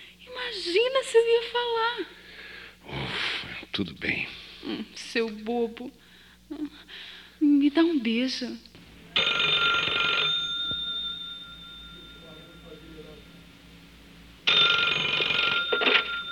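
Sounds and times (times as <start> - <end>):
speech: 0.5 - 2.2, 3.8 - 9.7
telephone ringing with electronic trill: 9.0 - 16.3.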